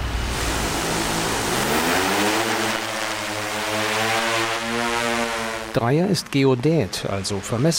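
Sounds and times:
broad rush of air noise: 0:00.0 - 0:05.8
hexacopter drone whirring over a cornfield: 0:00.0 - 0:06.0
speech: 0:05.8 - 0:07.7.

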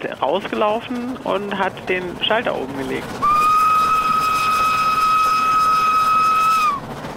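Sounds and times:
speech: 0:00.0 - 0:03.4
hissing rumble of approaching train: 0:00.0 - 0:07.1
approaching train whistle blast: 0:03.2 - 0:06.9.

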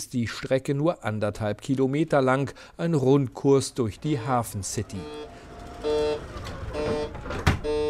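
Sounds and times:
speech: 0:00.0 - 0:06.5
low shuttle bus hum: 0:03.7 - 0:07.8
shuttle bus door opening and closing electronic warning beeps: 0:04.9 - 0:07.8.

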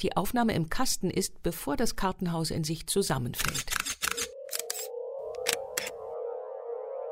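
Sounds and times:
speech: 0:00.0 - 0:03.8
mechanical camera shutter clicks: 0:03.4 - 0:06.0.

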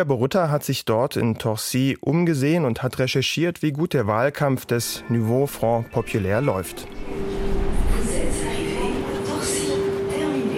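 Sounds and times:
speech: 0:00.0 - 0:07.3
S-Bahn commuter train arriving: 0:04.7 - 0:10.5
commuter train electric whine: 0:04.8 - 0:10.5.

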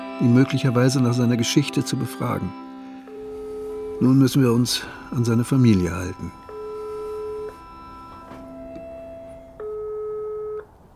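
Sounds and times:
speech: 0:00.2 - 0:02.6, 0:04.0 - 0:06.4
telephone ringback tone during outgoing call: 0:02.9 - 0:10.7
faint telephone line noise: 0:02.9 - 0:10.8.

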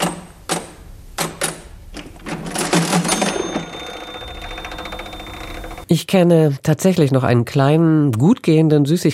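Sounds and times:
old mechanical cash register drawer mechanism whirring and rattling: 0:00.0 - 0:05.9
old mechanical cash register key presses: 0:01.2 - 0:05.9
old mechanical cash register ringing tone: 0:02.5 - 0:05.9
speech: 0:05.9 - 0:09.1.

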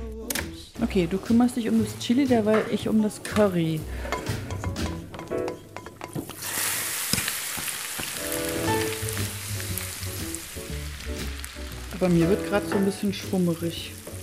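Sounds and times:
speech: 0:00.8 - 0:04.3, 0:12.0 - 0:14.0
sizzling and frying from pans on a busy stove: 0:00.8 - 0:14.2
cookware clinking: 0:02.5 - 0:06.4.

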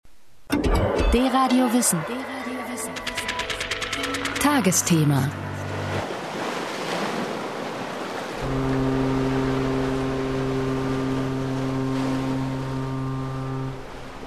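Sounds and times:
speech: 0:01.1 - 0:03.1, 0:04.0 - 0:05.4, 0:08.4 - 0:09.0
ocean waves: 0:01.3 - 0:14.2
container ship horn blasting: 0:05.0 - 0:06.1, 0:08.3 - 0:14.2
wind: 0:05.0 - 0:14.2.

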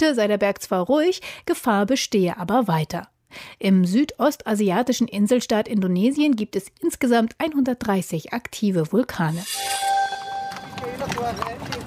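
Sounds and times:
speech: 0:00.0 - 0:10.0, 0:10.8 - 0:11.8
steady tone: 0:09.3 - 0:11.0
carriage horse hooves clip-clopping on a hard street: 0:09.6 - 0:11.8.

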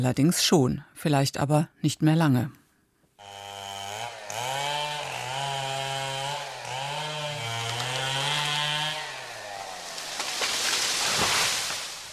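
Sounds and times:
speech: 0:00.0 - 0:02.6
chainsaw revving: 0:03.2 - 0:12.1.

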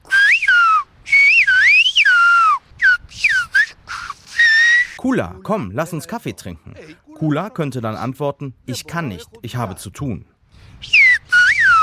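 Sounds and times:
whistled-language message with air pressed through teeth and tongue: 0:00.1 - 0:05.0, 0:10.8 - 0:11.8
speech: 0:05.0 - 0:10.9.

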